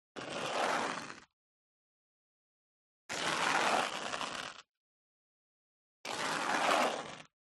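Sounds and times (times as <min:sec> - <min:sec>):
high heels sliding on gritty concrete: 0:00.2 - 0:01.2, 0:03.1 - 0:04.6, 0:06.1 - 0:07.3.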